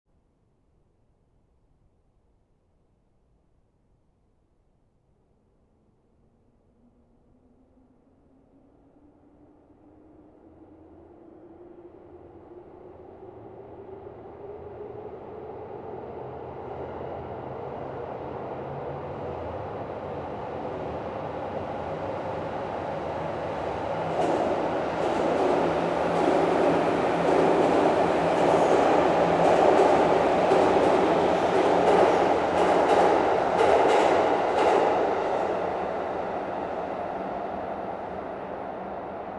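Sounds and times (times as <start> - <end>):
subway: 3.6 - 39.3.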